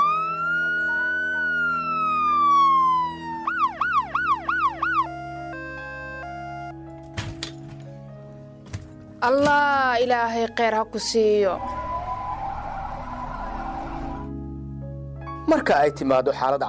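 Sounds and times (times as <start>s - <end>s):
Red Crescent emergency service ambulance siren: 0.0s - 6.8s, 11.5s - 14.4s
speech: 9.2s - 11.8s, 15.6s - 16.6s.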